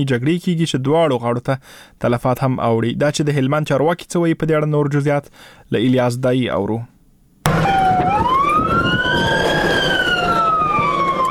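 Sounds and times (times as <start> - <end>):
speech: 0.0 - 6.9
ambulance siren wailing in Lashkar Gah, Helmand: 7.5 - 11.2.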